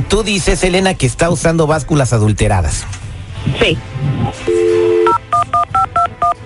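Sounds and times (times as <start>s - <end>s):
speech: 0.1s - 4.6s
telephone dial tone: 4.5s - 6.4s.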